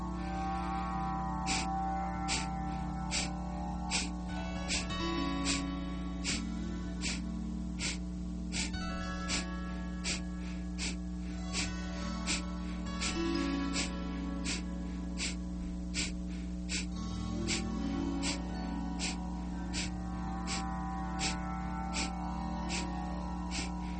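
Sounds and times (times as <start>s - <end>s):
soft sustained musical drone: 0.0s - 23.9s
rapid forceful nasal exhalations in Kapalabhati breathing: 1.5s - 1.7s, 2.3s - 3.3s, 3.9s - 18.4s, 19.0s - 19.2s, 19.8s - 20.6s, 21.2s - 21.4s, 22.0s - 22.9s, 23.5s - 23.9s.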